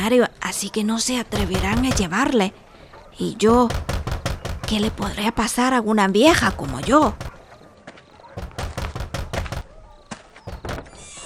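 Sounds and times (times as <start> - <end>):
speech: 0.0 - 2.6, 3.2 - 3.9, 4.7 - 7.3
knocking on a house door: 1.3 - 2.2, 3.5 - 5.3, 6.3 - 7.5, 8.4 - 9.8, 10.5 - 11.0.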